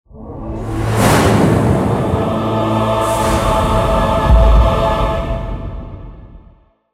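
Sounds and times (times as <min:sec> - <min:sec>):
choir singing: 0:00.1 - 0:06.6
thunder: 0:00.8 - 0:06.2.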